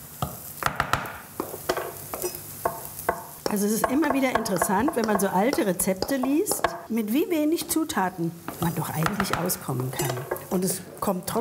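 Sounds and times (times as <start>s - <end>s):
faint steady sizzle of flour-and-egg batter cooking: 0.0s - 11.3s
cooking spoon scraping and clicking against a pan stirring flour-and-egg batter: 1.4s - 6.9s, 8.4s - 11.1s
speech: 3.5s - 11.3s.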